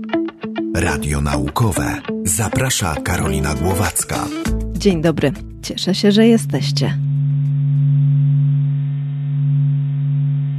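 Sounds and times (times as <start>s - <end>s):
speech: 0.8s - 7.0s
sonified solar vibrations from SOHO space probe data: 5.4s - 10.5s.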